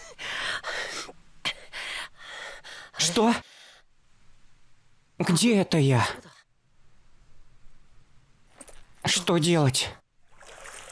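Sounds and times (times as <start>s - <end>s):
speech: 3.1s - 3.5s, 5.3s - 6.2s, 9.3s - 10.0s
soft continuous water splashing: 10.2s - 10.9s.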